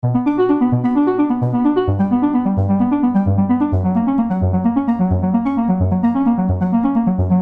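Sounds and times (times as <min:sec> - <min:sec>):
soft synthesizer tone: 0:00.0 - 0:07.3.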